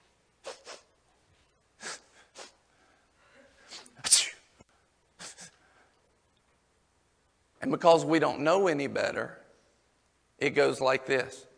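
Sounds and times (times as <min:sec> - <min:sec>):
voice imitating sniffling: 0:00.4 - 0:00.9, 0:01.8 - 0:02.7, 0:03.4 - 0:04.5, 0:05.2 - 0:05.8
speech: 0:07.6 - 0:09.4, 0:10.4 - 0:11.5.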